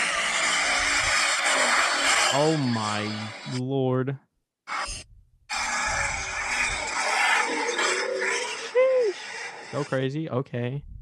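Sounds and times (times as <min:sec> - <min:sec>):
pickup truck tires screeching in a burnout: 0:00.0 - 0:03.4, 0:04.7 - 0:10.1
speech: 0:02.3 - 0:04.3, 0:09.7 - 0:10.9.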